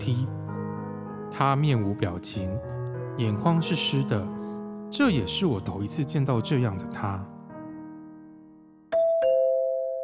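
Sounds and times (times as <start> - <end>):
speech: 0.0 - 0.4, 1.4 - 7.4
electronic doorbell chiming: 8.9 - 10.0.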